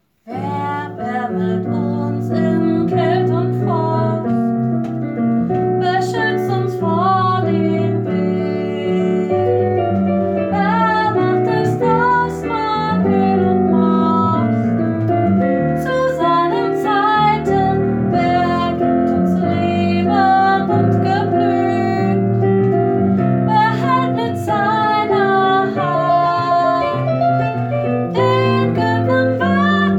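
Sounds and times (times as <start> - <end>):
soprano singing: 0.2 - 29.9.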